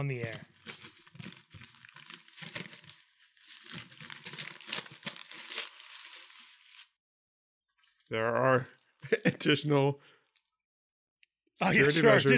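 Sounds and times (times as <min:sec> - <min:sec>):
speech: 0:00.0 - 0:00.5, 0:08.1 - 0:10.2, 0:11.6 - 0:12.3
bag and tin foil being opened and crinkled for a food taste test: 0:00.2 - 0:06.9
laughter: 0:09.0 - 0:09.8, 0:11.6 - 0:12.3.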